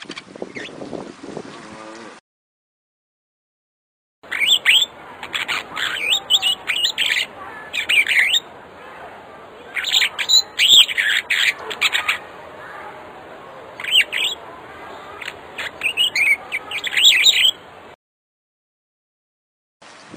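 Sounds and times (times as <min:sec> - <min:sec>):
African starling song: 0:04.3 - 0:17.9.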